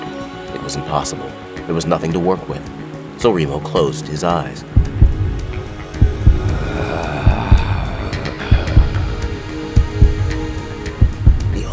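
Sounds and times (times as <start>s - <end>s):
speech: 0.7s - 5.0s
heavy throbbing heartbeat: 4.8s - 11.7s.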